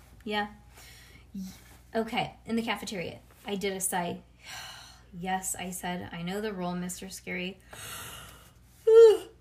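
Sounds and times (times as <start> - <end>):
speech: 0.2 - 8.1
person yawning: 8.9 - 9.3.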